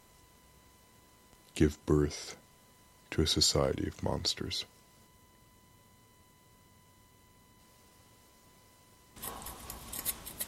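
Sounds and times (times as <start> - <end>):
speech: 1.6 - 2.4, 3.1 - 4.8
scissors snipping and crunching through material: 9.2 - 10.4.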